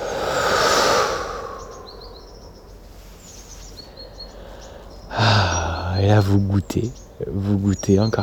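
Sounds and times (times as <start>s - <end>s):
long deep inhale and exhale: 0.0s - 2.5s, 3.9s - 6.0s
faint bird chirps: 0.0s - 8.2s
speech: 6.0s - 8.2s.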